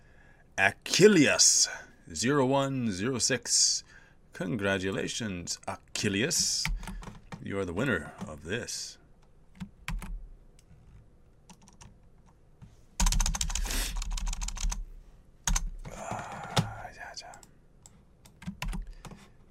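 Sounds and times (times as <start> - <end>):
speech: 0.6 - 9.0
typing on a computer keyboard while writing a message: 6.6 - 7.4, 9.6 - 10.2, 11.5 - 12.4, 13.0 - 14.8, 15.5 - 16.7, 18.2 - 19.3.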